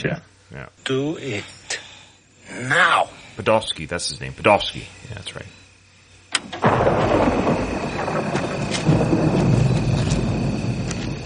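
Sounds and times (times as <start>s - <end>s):
speech: 0.0s - 1.6s, 2.6s - 5.5s
thunder crashing in a storm: 6.4s - 11.2s.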